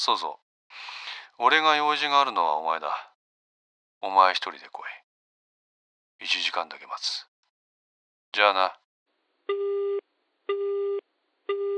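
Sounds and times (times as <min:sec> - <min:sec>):
speech: 0:00.0 - 0:03.1, 0:04.0 - 0:05.0, 0:06.2 - 0:07.3, 0:08.4 - 0:08.8, 0:09.5 - 0:09.8
telephone busy tone after a hang-up: 0:09.5 - 0:11.7.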